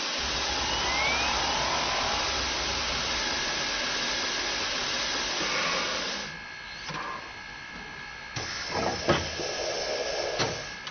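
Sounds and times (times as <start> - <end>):
steam locomotive hissing while building up steam: 0.2 - 6.3, 8.4 - 10.7.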